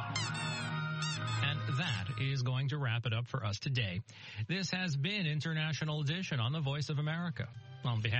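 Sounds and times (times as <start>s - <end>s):
person imitating duck quacking to entertain an audience: 0.2s - 2.2s
speech: 1.8s - 8.1s.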